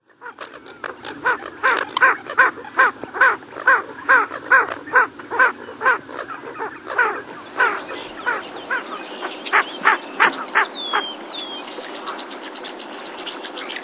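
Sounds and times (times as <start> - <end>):
Ring-necked Duck calling: 0.2 - 11.1.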